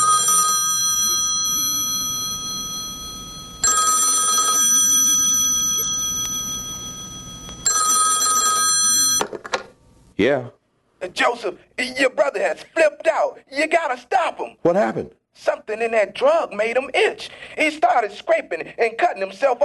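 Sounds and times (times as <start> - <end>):
telephone ringing with a bright electronic trill: 0.0 - 9.5
speech: 10.2 - 19.6.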